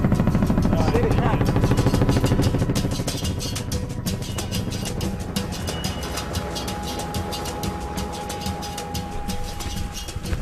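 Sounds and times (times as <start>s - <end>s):
logging truck engine rumbling: 0.0s - 10.3s.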